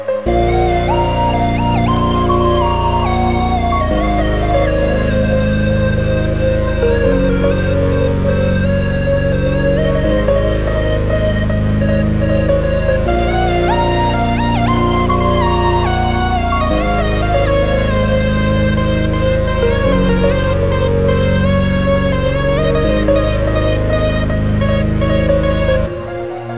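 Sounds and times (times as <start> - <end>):
trance dance classical melody: 0.3 - 26.4.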